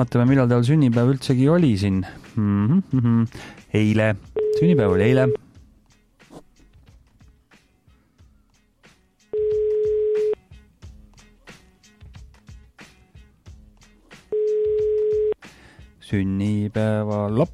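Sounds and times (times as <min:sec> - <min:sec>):
speech: 0:00.0 - 0:05.4, 0:16.1 - 0:17.5
busy music: 0:00.0 - 0:17.5
outgoing phone call ringback tones: 0:04.4 - 0:05.4, 0:09.4 - 0:10.4, 0:14.3 - 0:15.4.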